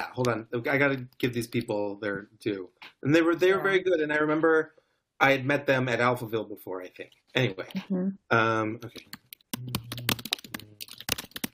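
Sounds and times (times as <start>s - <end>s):
speech: 0.0s - 9.9s
fast hard typing on a computer keyboard: 9.1s - 11.5s.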